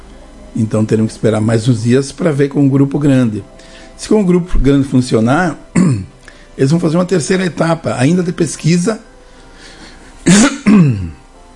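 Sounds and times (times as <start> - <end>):
speech: 0.6 - 9.1, 10.2 - 10.9
rasping coughs from an old allergy: 5.8 - 6.1, 10.2 - 11.2.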